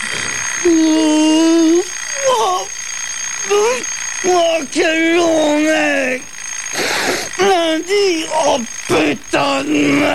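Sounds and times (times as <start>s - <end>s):
voice imitating an alarm clock: 0.0s - 2.8s, 3.4s - 10.1s
speech: 0.6s - 1.1s.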